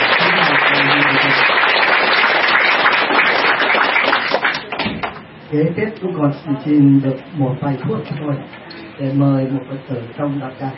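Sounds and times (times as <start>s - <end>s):
audience applause at a Buddhist community gathering: 0.0s - 5.2s
speech: 5.5s - 10.7s.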